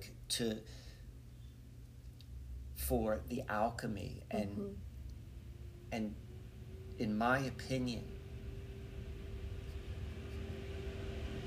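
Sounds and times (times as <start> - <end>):
speech: 0.0 - 0.8, 2.9 - 4.9, 5.9 - 6.2, 7.0 - 8.2
heavy dump truck rumbling past: 4.8 - 11.4.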